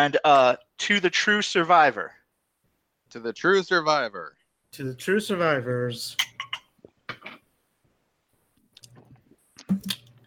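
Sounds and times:
speech: 0:00.0 - 0:02.2, 0:03.1 - 0:06.3
wet mouth noises while sipping bourbon: 0:08.6 - 0:10.2.

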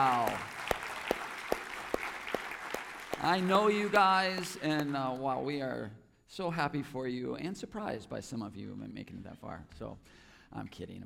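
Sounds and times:
audience applause for graduating seniors: 0:00.0 - 0:05.4
sharp rhythmic claps: 0:00.0 - 0:05.6
speech: 0:03.2 - 0:11.0.

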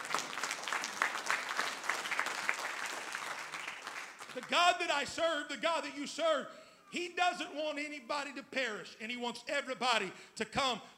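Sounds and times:
crowd clapping: 0:00.0 - 0:04.8
speech: 0:04.4 - 0:10.9.

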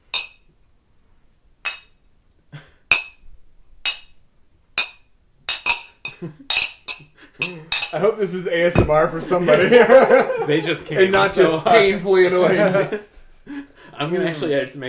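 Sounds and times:
glasses of scotch clinking together: 0:00.0 - 0:00.5, 0:03.8 - 0:04.2, 0:04.8 - 0:08.0, 0:08.8 - 0:10.2
speech: 0:06.2 - 0:13.1, 0:14.0 - 0:14.8
laughter: 0:09.1 - 0:14.5.

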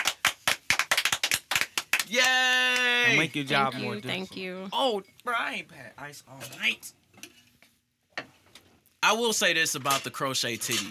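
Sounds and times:
hands clapping: 0:00.0 - 0:03.2
speech: 0:02.1 - 0:07.0, 0:09.0 - 0:10.9.

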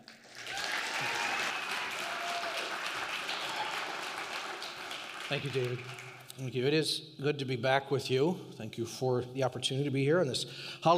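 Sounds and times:
crowd applauding to welcome a speaker: 0:00.0 - 0:06.3
speech: 0:05.3 - 0:10.9.

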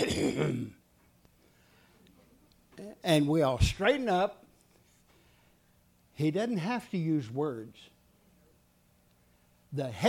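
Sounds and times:
gruff raspy throat clearing: 0:00.0 - 0:00.8
speech: 0:03.0 - 0:04.4, 0:06.2 - 0:07.9, 0:09.7 - 0:10.0.

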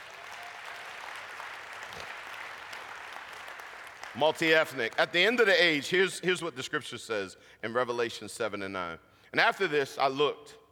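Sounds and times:
congregation clapping hands: 0:00.0 - 0:05.4
speech: 0:04.2 - 0:10.6.

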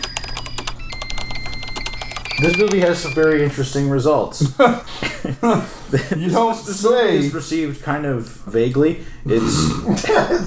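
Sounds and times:
steady electronic computer beeping tones: 0:00.0 - 0:03.5
keyboard keys clacking: 0:00.0 - 0:03.6
speech: 0:02.4 - 0:10.4.

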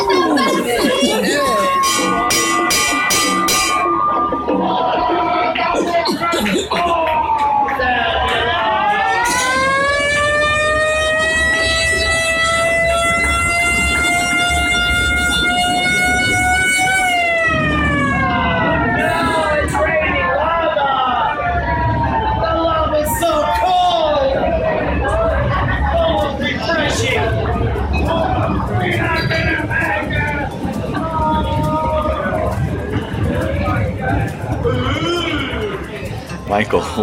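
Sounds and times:
laughter: 0:00.0 - 0:08.7
sirens wailing in a volcano eruption effect on a theme-park ride: 0:00.0 - 0:37.0
horn-like blasts: 0:01.5 - 0:04.6, 0:09.2 - 0:18.4.

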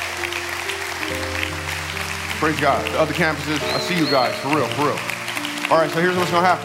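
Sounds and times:
church audience applauding: 0:00.0 - 0:06.6
speech: 0:02.4 - 0:05.1, 0:05.7 - 0:06.6.

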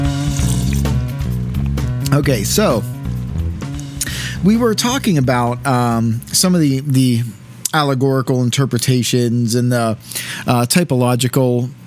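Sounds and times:
person taking a sip of water: 0:00.0 - 0:05.2, 0:05.9 - 0:06.4, 0:10.0 - 0:10.3
speech: 0:02.1 - 0:03.0, 0:04.4 - 0:11.8.

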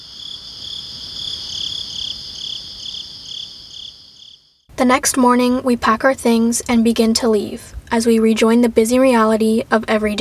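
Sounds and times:
crickets and other creatures trilling at night: 0:00.0 - 0:09.4
faint low rumble: 0:04.7 - 0:10.1
speech: 0:04.8 - 0:10.1.

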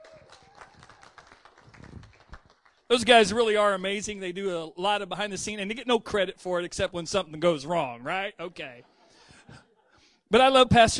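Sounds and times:
audience applauding: 0:00.0 - 0:02.9
speech: 0:02.9 - 0:08.9, 0:10.3 - 0:10.9.

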